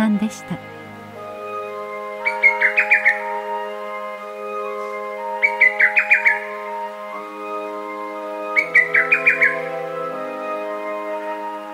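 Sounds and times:
lesser cuckoo singing in Rikugien garden in Tokyo Japan: 0.0s - 11.7s
speech: 0.2s - 0.8s.

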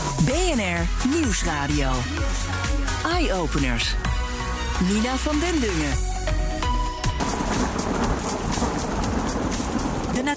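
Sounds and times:
speech: 0.2s - 4.2s, 4.8s - 6.5s, 10.2s - 10.3s
sharp crack of thunder rumbling low: 7.1s - 10.3s
steady dense rain hissing: 7.1s - 10.3s.

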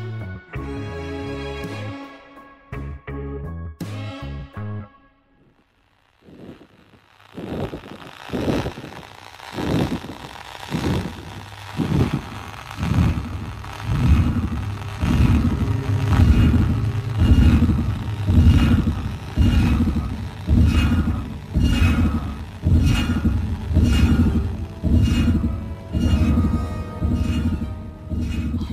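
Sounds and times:
radio signal of rhythmic pulses of dense static-like noise: 5.4s - 28.7s
brief droning tonal opening: 6.2s - 28.7s.

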